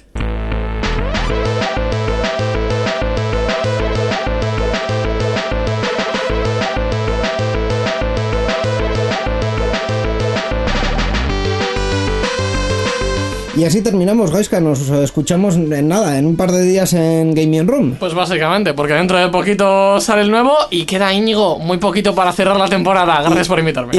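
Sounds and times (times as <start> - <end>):
computer-made electronic music track from a demoparty with driving beat and synths: 0.0 - 15.5
speech: 13.6 - 23.9.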